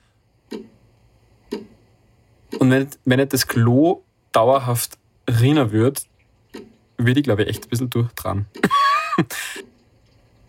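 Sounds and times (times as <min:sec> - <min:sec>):
low hum: 0:00.0 - 0:10.4
clock ticking: 0:00.4 - 0:00.8, 0:01.4 - 0:01.8, 0:02.5 - 0:03.7, 0:06.5 - 0:09.0
speech: 0:02.7 - 0:09.7
laughter: 0:08.6 - 0:09.6.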